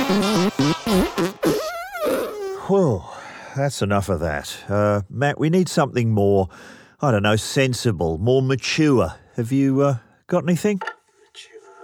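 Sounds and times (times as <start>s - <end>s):
loud buzzy fart sound effects ending in a squeaky rising toot: 0.0s - 2.6s
speech: 0.1s - 1.2s, 2.7s - 11.5s.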